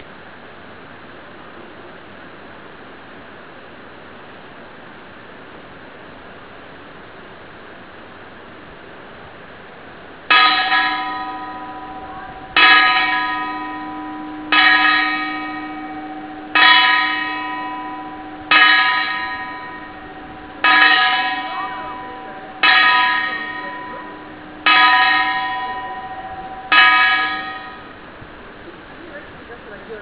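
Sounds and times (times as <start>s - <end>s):
cracked bell striking the hours: 10.3s - 28.1s.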